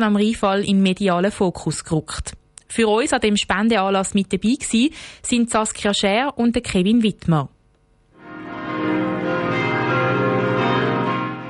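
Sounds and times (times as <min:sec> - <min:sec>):
speech: 0:00.0 - 0:07.5
church bells ringing in Neuhausen am Rheinfall, Switzerland, during a nationwide ringing: 0:08.2 - 0:11.4.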